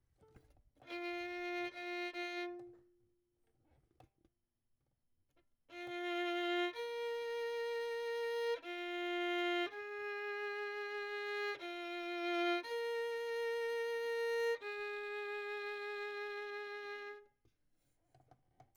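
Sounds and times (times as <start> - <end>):
violin: 0.8 - 2.9, 5.7 - 17.3.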